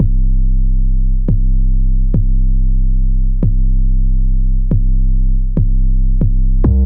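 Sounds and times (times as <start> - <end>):
808 bass trap drum in C: 0.0 - 6.8.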